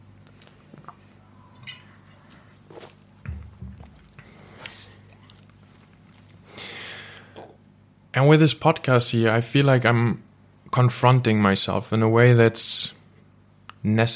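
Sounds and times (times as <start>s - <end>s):
person sipping a drink: 0.2s - 3.2s, 3.8s - 7.6s
breathy exhale: 6.5s - 7.5s
speech: 8.2s - 13.0s, 13.8s - 14.1s.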